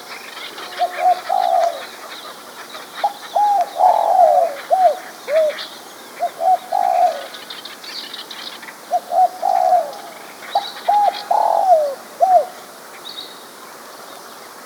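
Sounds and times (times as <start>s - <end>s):
spotted dove singing soft low coos: 0.6s - 5.6s, 6.2s - 7.3s, 8.9s - 12.6s.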